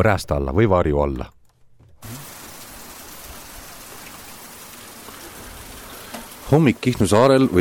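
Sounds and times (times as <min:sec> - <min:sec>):
speech: 0:00.0 - 0:01.4, 0:06.5 - 0:07.5
heavy rain pouring and drumming on surfaces: 0:02.0 - 0:07.5.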